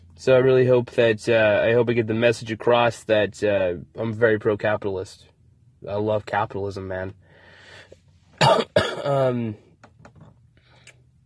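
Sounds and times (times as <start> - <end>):
speech: 0.2 - 7.2, 8.4 - 9.6
coughs: 8.4 - 9.5.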